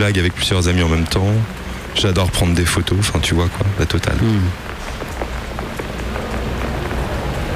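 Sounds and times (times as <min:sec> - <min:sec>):
speech: 0:00.0 - 0:04.7
steady rain pattering on hard urban surfaces: 0:00.0 - 0:07.5.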